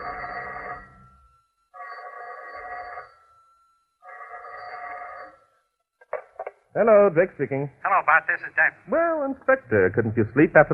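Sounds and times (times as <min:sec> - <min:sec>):
telephone ringing with an electronic trill: 0:00.0 - 0:05.8
speech: 0:06.8 - 0:10.7.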